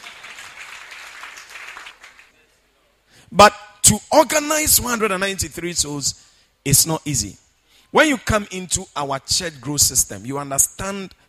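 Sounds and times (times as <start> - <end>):
crowd clapping: 0.0 - 2.4
speech: 3.3 - 11.2.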